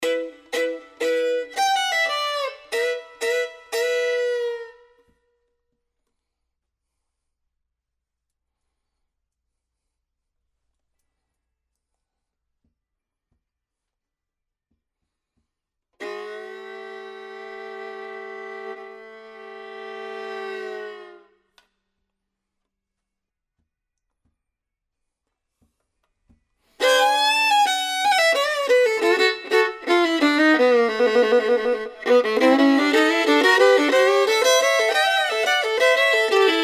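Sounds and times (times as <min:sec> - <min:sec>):
fiddle: 0:00.0 - 0:04.9, 0:16.0 - 0:21.3, 0:26.8 - 0:36.6.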